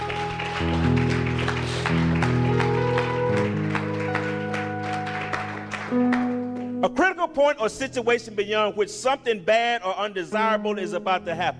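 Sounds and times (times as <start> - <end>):
crowd clapping in praise: 0.0 - 7.1
sustained organ or keyboard chords: 0.0 - 11.5
speech: 6.8 - 11.5.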